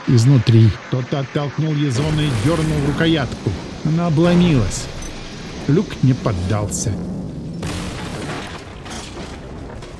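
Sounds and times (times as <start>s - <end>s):
speech: 0.1s - 5.0s, 5.6s - 7.2s
cannon fire booming: 2.0s - 9.9s.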